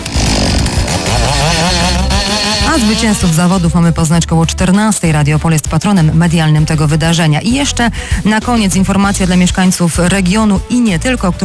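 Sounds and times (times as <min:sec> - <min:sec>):
chainsaw cutting wood at a lumberjack competition: 0:00.0 - 0:04.0
speech: 0:02.8 - 0:11.4.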